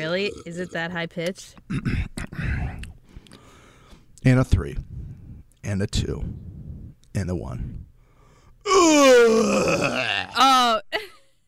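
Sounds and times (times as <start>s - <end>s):
speech: 0.0s - 2.6s, 4.2s - 4.9s, 5.6s - 6.5s, 7.2s - 7.9s, 8.6s - 11.0s
exaggerated performed yawn close to the microphone: 8.6s - 10.8s.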